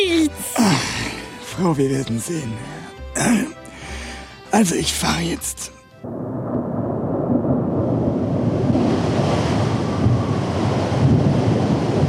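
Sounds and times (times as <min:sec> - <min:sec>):
speech: 0:01.6 - 0:03.6, 0:04.5 - 0:06.3
rumbling storm wind: 0:05.9 - 0:12.0
crashing surf: 0:08.4 - 0:12.0.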